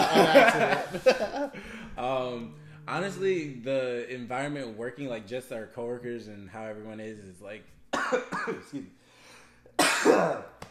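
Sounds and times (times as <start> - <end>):
laughter: 0.0 - 2.0
speech: 0.5 - 9.0, 9.8 - 10.6
person coughing: 7.9 - 8.9, 9.8 - 10.6.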